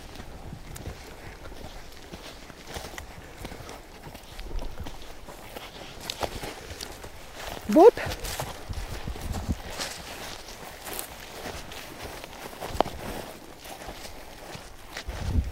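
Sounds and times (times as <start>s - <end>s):
footsteps of a person tramping through loose dune sand: 0.0s - 15.4s
speech: 7.7s - 8.3s.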